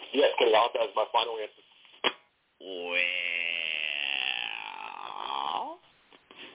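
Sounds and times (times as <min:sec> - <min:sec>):
speech: 0:00.2 - 0:01.7, 0:02.7 - 0:03.2
drawn-out wavering voice-like tone: 0:02.6 - 0:05.9.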